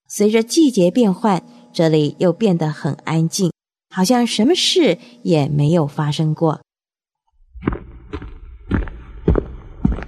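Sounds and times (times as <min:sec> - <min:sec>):
speech: 0:00.2 - 0:06.6
heavy footsteps at walking pace: 0:07.6 - 0:10.0.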